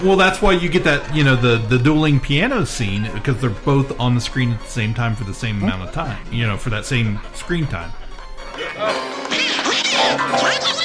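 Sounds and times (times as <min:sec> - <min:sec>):
speech: 0:00.0 - 0:08.0, 0:08.8 - 0:09.4
cartoon duck voice quacking unintelligibly: 0:09.3 - 0:10.8.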